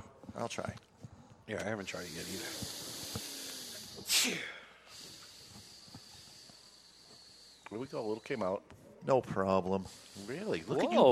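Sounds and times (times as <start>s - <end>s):
speech: 0.4s - 0.9s, 1.5s - 2.9s, 4.2s - 4.6s, 7.7s - 11.0s
cigar smoke exhaled through the nose: 1.9s - 8.3s, 9.9s - 10.8s.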